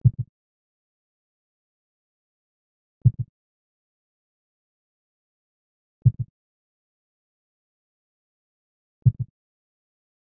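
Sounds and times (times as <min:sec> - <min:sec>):
heartbeat while diving at 15 bpm: 0:00.0 - 0:00.3, 0:03.0 - 0:03.3, 0:06.0 - 0:06.3, 0:09.0 - 0:09.3.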